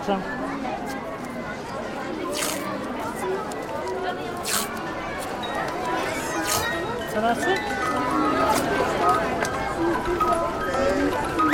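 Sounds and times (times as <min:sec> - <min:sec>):
speech: 0:00.0 - 0:00.4, 0:07.2 - 0:11.5
murmur of chatter at an arts festival: 0:00.0 - 0:11.5
adhesive tape being pulled from a roll: 0:02.3 - 0:02.7, 0:04.4 - 0:04.8, 0:06.4 - 0:06.7.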